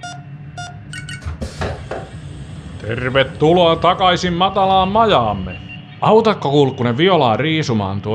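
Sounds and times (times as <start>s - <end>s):
airlock inner door opening with hissing clanking mechanical noise: 0.0s - 6.2s
airlock electronic beeps: 0.0s - 7.0s
speech: 2.8s - 8.1s.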